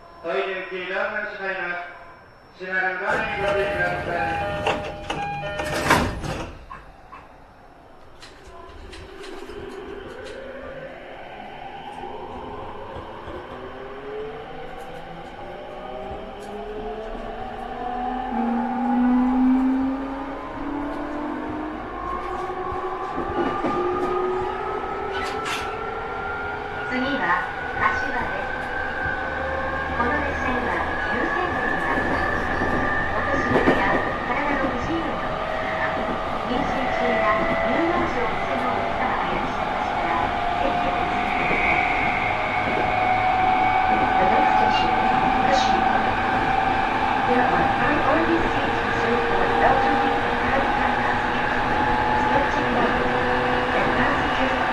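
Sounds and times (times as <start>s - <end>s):
joban rapid Narita E231 train: 0.0s - 54.7s.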